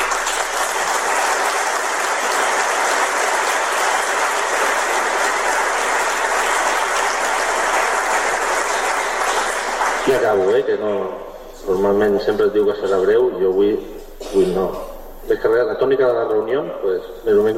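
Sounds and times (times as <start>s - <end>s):
crowd applause: 0.0s - 10.5s
speech: 10.1s - 17.5s.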